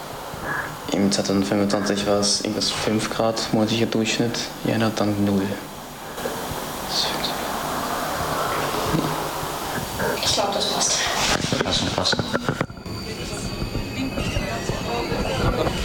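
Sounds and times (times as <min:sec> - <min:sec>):
moving tram interior rumbling: 0:00.0 - 0:15.8
speech: 0:00.4 - 0:05.7.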